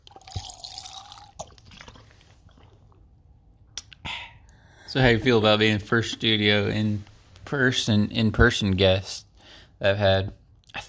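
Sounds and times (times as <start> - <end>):
person sipping water: 0.0 - 3.2
short wet slurps and gulps: 0.0 - 4.0
speech: 4.9 - 10.4.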